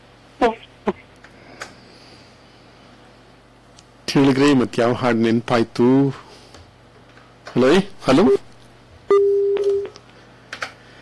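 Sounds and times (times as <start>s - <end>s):
speech: 4.1s - 6.2s, 7.6s - 8.4s
telephone disconnect tone after caller hung up on a phone-in line: 9.1s - 10.0s.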